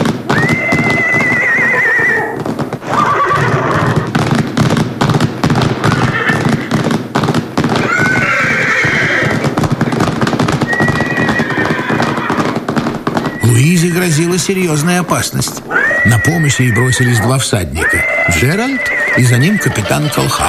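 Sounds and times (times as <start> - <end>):
wild horses whinnying: 0.0 - 4.3, 5.5 - 7.0, 7.6 - 20.4
pounding of hooves of a galloping wild horse herd: 0.0 - 20.4
speech: 14.2 - 20.4.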